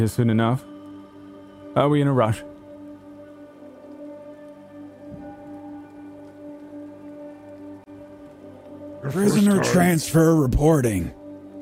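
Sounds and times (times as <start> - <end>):
speech: 0.0 - 0.7, 1.8 - 2.5, 9.0 - 11.2
steady rain pattering on a hard surface: 2.5 - 8.8.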